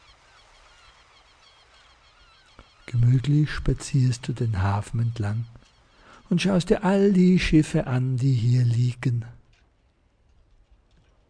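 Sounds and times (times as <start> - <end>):
seagulls calling over the sea: 0.0 - 8.5
speech: 2.9 - 5.6, 6.3 - 9.4.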